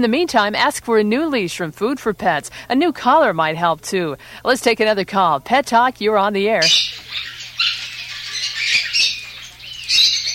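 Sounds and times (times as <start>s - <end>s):
speech: 0.0s - 7.3s
lovebirds squawking and chirping: 6.6s - 10.3s.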